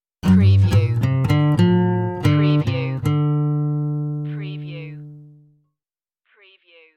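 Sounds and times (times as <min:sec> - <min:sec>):
acoustic blues riff: 0:00.2 - 0:05.6.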